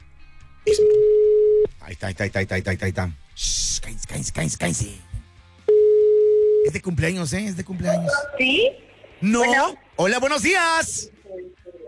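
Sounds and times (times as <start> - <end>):
speech: 0.7 - 1.1, 1.9 - 5.1, 6.6 - 11.6
telephone ringback tone while placing a call: 0.7 - 1.7, 5.7 - 6.8.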